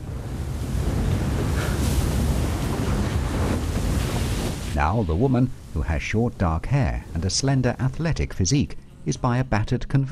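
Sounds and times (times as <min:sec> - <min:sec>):
wind buffeting the microphone: 0:00.0 - 0:05.8
waves washing in: 0:00.0 - 0:08.0
continuous roar of ocean surf: 0:00.0 - 0:08.1
speech: 0:04.8 - 0:10.0.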